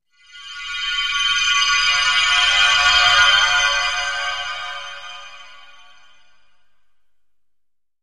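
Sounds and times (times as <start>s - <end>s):
eerie twinkling pad music: 0.2s - 6.5s.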